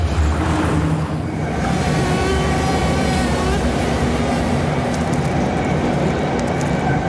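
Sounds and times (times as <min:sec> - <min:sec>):
faint high metallic whines from the wheels: 0:00.0 - 0:05.0
subway train carriage rumbling: 0:00.0 - 0:07.0.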